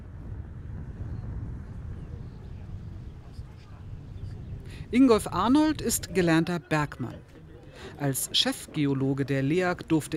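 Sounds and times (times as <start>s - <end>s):
strong wind buffeting the microphone atop a 36-metre-high coastal observation tower: 0.0s - 8.8s
speech: 4.9s - 10.1s.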